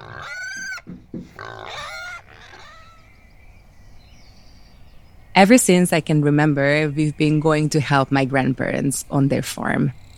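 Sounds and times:
pigs squealing loudly before feeding: 0.0s - 3.0s
barnyard noise: 0.0s - 10.1s
speech: 5.4s - 10.0s.

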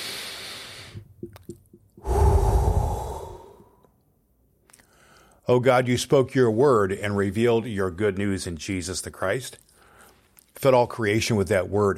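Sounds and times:
deep breath taken before a prayer: 0.0s - 1.1s, 2.0s - 3.9s, 4.8s - 5.4s, 9.7s - 10.4s
speech: 5.5s - 9.7s, 10.6s - 11.9s.

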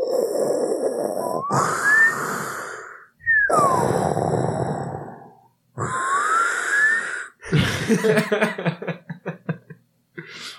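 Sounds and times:
person imitating heavy mechanical respirator breathing: 0.0s - 7.8s
laughter: 7.5s - 9.8s.

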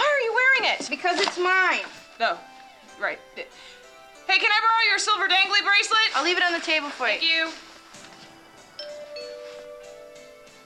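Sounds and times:
speech: 0.6s - 7.7s
two-tone doorbell chiming indoors: 8.6s - 10.6s.

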